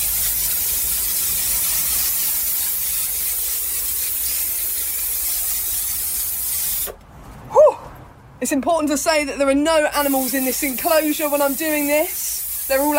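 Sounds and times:
spray bottle misting mite treatment: 0.0 - 7.0, 10.0 - 12.9
speech: 8.4 - 12.9.

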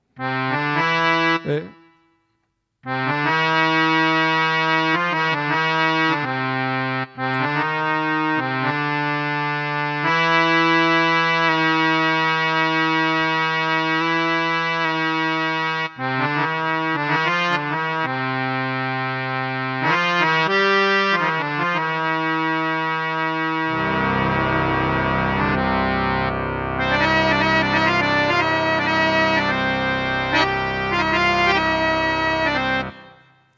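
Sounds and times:
speech: 0.2 - 0.4, 1.5 - 1.8
sustained instrumental C major chord with quarter-tone third: 2.9 - 33.5.

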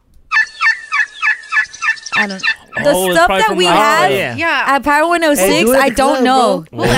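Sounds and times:
turkey assembly call yelping: 0.3 - 4.1
speech: 2.2 - 6.9.

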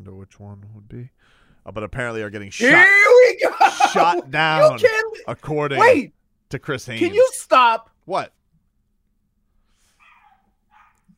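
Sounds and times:
low steady hum: 0.0 - 11.1
speech: 0.2 - 8.4
laughter: 3.4 - 5.3
dogs barking: 10.0 - 11.1.

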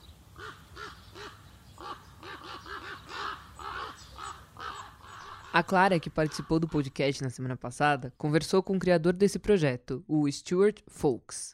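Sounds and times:
crows cawing in a garden: 0.3 - 7.0
speech: 5.6 - 11.5.

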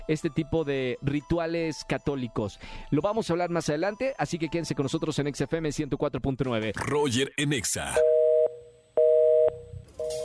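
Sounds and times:
speech: 0.1 - 8.2
telephone line beeps as a call is transferred to voicemail: 8.0 - 10.2.

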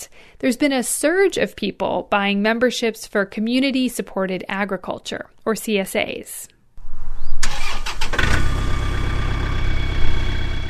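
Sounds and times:
speech: 0.4 - 6.6
tractor engine cranking and starting up, settling into a rumbling idle: 7.4 - 10.6.

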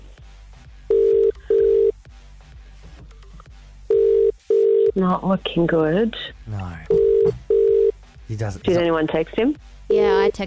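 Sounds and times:
outgoing phone call ringing tone beeps: 0.9 - 2.0, 3.9 - 5.0, 6.9 - 7.9
speech: 5.0 - 6.8, 8.3 - 10.4.

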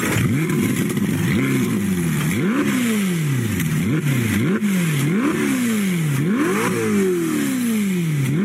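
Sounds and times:
V8 sports car engine revving: 0.0 - 8.4.

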